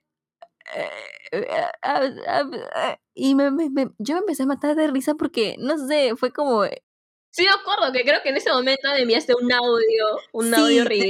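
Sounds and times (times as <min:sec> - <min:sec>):
voice imitating a loud fart: 0:00.5 - 0:01.9
speech: 0:00.8 - 0:11.0.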